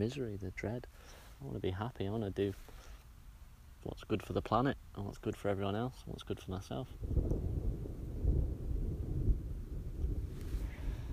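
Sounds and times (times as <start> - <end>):
speech: 0.0 - 2.9, 3.8 - 7.6
thunder rumbling: 7.0 - 11.1.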